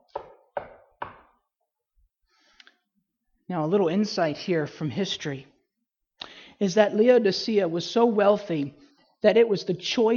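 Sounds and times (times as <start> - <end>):
firm knocks on a wooden door: 0.1 - 1.3
speech: 3.5 - 5.5, 6.6 - 10.1.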